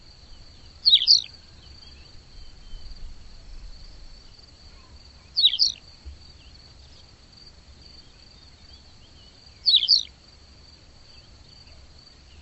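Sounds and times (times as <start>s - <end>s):
constant high hum: 0.0s - 12.4s
bird calling in warbled chirp bursts: 0.8s - 2.0s, 5.2s - 5.8s, 9.5s - 10.1s.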